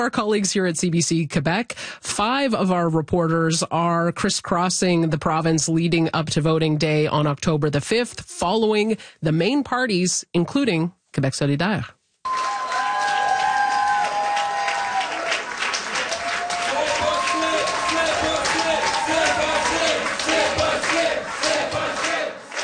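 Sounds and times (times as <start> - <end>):
speech: 0.0 - 12.4
campaign supporters cheering, shouting and clapping at a party headquarters: 12.2 - 22.6.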